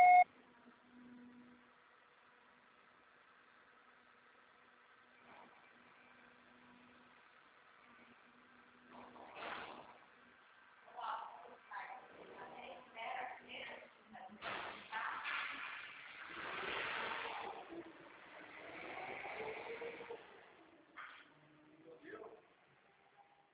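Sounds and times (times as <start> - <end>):
short clear voicemail beep: 0.0 - 0.2
faint low hum: 0.0 - 23.5.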